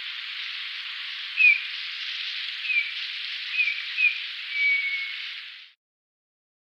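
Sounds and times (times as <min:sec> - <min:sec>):
continuous hiss: 0:00.0 - 0:05.8
Eurasian bullfinch whistling: 0:01.4 - 0:01.7, 0:02.6 - 0:02.9, 0:03.5 - 0:05.2.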